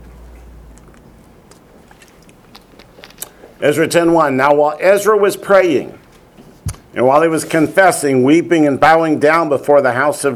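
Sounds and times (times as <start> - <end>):
low hum: 0.0 - 10.3
person sipping water: 1.5 - 3.6
small wet mouth clicks: 1.5 - 3.6
swallowing sounds: 1.8 - 3.6
speech: 3.6 - 6.0, 7.0 - 10.3.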